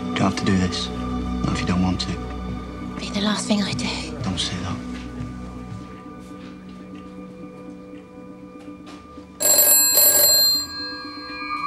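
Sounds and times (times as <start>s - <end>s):
speech: 0.2s - 2.3s, 3.0s - 4.9s
telephone ringing: 9.4s - 11.6s.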